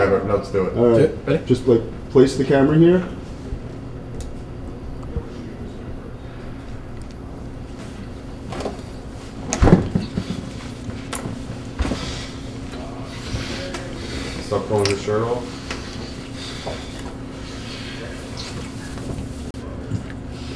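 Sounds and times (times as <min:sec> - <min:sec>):
speech: 0:00.0 - 0:03.2
steady low fridge hum: 0:00.0 - 0:20.5
fridge door thudding open: 0:09.5 - 0:10.3.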